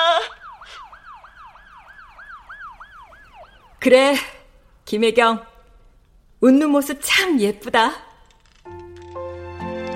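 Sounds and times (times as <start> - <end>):
police car siren yelping as the car enters a park entrance: 0.0 - 3.8
speech: 3.8 - 5.5, 6.4 - 8.1.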